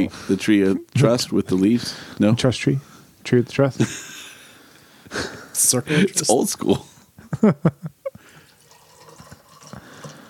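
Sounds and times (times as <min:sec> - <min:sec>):
speech: 0:00.0 - 0:04.1, 0:05.6 - 0:08.0
Perrier sparkling water pouring heavily into a glass: 0:08.4 - 0:10.2.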